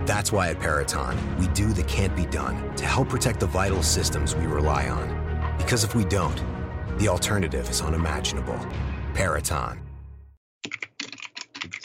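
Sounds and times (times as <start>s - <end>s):
speech: 0.1s - 9.8s
computer keyboard keystrokes: 10.6s - 11.8s.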